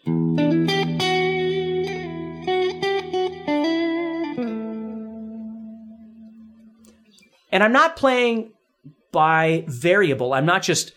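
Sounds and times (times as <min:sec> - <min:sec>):
electric guitar with a clean amp tone playing chords and single notes: 0:00.0 - 0:07.0
speech: 0:07.6 - 0:10.9.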